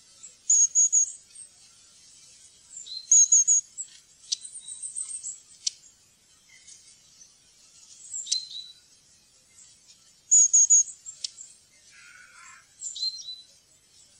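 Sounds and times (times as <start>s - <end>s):
long-tailed tit calling: 0.2s - 1.4s, 2.7s - 5.9s, 8.0s - 8.9s, 10.3s - 11.6s, 12.6s - 13.5s.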